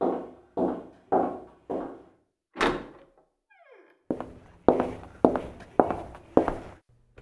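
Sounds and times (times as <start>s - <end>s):
heavy footsteps: 0.0s - 2.1s, 4.1s - 6.8s
front door shutting thump: 2.6s - 3.1s
front door creaking open: 2.6s - 4.2s.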